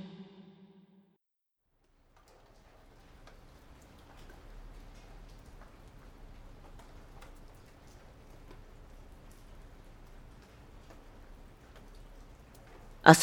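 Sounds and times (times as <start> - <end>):
brief tonal sound: 0.0 - 0.7
steady rain falling in the morning: 2.0 - 13.2.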